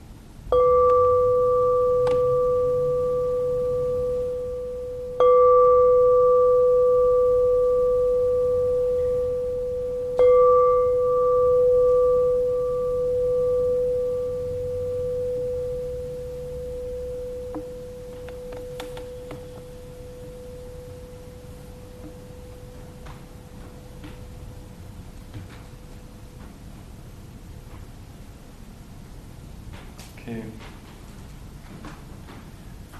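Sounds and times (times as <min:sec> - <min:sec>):
meditation bell struck and ringing: 0:00.5 - 0:25.1.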